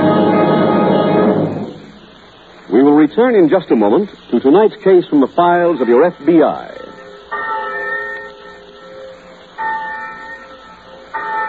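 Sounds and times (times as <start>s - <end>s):
large college bell tolling for class: 0.0s - 2.2s, 5.6s - 11.4s
speech: 3.0s - 6.8s.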